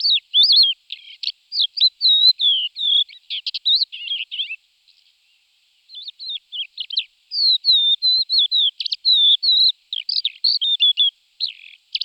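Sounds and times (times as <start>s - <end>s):
Crested lark Galerida cristata song of warbles and whistles: 0.0s - 4.6s, 5.9s - 12.0s.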